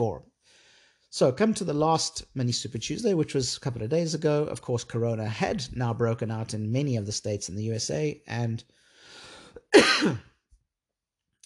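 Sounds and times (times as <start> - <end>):
speech: 0.0 - 0.3, 1.1 - 8.8, 9.7 - 10.3
dry rough throaty cough: 9.6 - 10.4.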